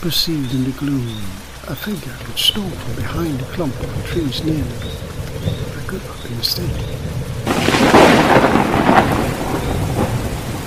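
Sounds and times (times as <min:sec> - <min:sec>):
speech: 0:00.0 - 0:09.3
heavy steady rain in a thunderstorm among mountains: 0:00.0 - 0:10.6
deep rolling thunder among mountains: 0:02.7 - 0:10.6.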